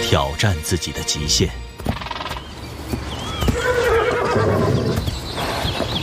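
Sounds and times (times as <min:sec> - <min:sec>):
speech: 0:00.1 - 0:01.7
herd of wild horses neighing and whinnying: 0:03.2 - 0:05.9.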